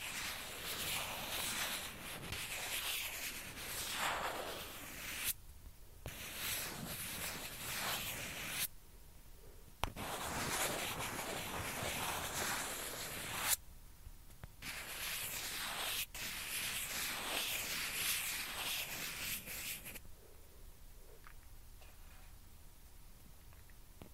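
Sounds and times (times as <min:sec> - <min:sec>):
ping pong ball scratched and rubbed: 0:00.0 - 0:05.4, 0:06.1 - 0:08.7, 0:09.8 - 0:13.6, 0:14.6 - 0:20.0.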